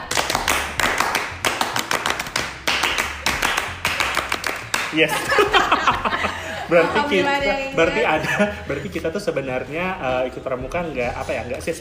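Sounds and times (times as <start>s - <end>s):
Indonesian Pramuka scout clap rhythmic clapping pattern: 0.0s - 6.7s
speech: 4.9s - 11.7s
laughter: 5.0s - 7.3s, 8.0s - 9.0s.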